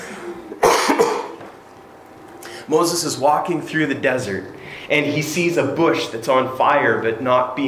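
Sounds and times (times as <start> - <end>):
person coughing into a head-worn microphone: 0.5 - 1.4
speech: 2.7 - 7.6.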